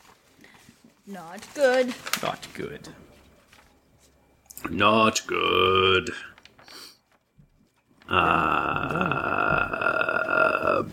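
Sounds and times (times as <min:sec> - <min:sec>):
speech: 0:01.1 - 0:03.1, 0:04.6 - 0:06.3, 0:08.1 - 0:09.1
long loud drawn-out burp: 0:08.1 - 0:10.9.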